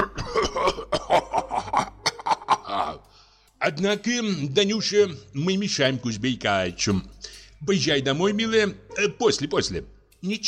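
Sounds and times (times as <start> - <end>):
man in a stage play coughing angrily: 0.0 - 3.0
speech: 3.7 - 10.4.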